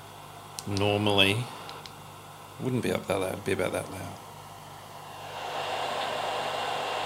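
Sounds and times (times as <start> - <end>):
air conditioner running: 0.0 - 7.0
speech: 0.7 - 1.6, 2.6 - 4.2.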